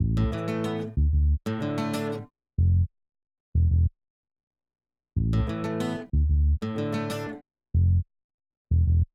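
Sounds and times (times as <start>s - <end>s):
multitrack bass guitar combo: 0.0s - 2.9s, 3.6s - 3.9s, 5.2s - 8.0s.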